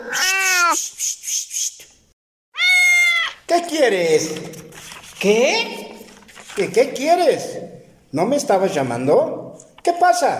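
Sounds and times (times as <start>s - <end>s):
cat meowing: 0.0s - 0.8s, 2.5s - 3.5s
speech: 3.8s - 4.6s, 5.2s - 5.8s, 6.6s - 10.3s.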